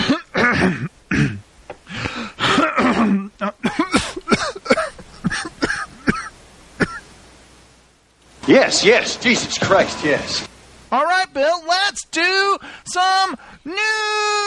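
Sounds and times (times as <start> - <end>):
throat clearing: 0.0 - 1.4, 2.0 - 7.0
coughing: 0.0 - 7.1
speech: 8.6 - 14.3.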